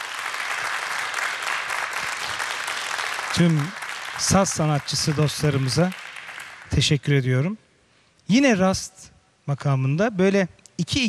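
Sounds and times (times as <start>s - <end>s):
audience applause for an orchestra of Turkish classical music instrumentalists: 0.0s - 6.7s
speech: 3.4s - 6.0s, 6.7s - 7.6s, 8.3s - 11.0s.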